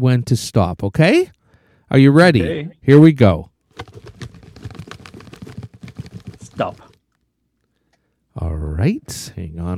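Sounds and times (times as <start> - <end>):
speech: 0.0 - 4.4, 6.6 - 6.9, 8.4 - 9.7
paper slips shaken in a small plastic bucket: 3.7 - 7.0.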